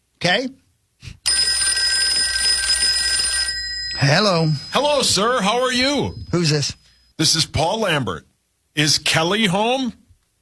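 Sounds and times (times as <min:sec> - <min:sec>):
speech: 0:00.2 - 0:01.1, 0:04.0 - 0:10.0
telephone ringing with electronic trill: 0:01.3 - 0:07.0.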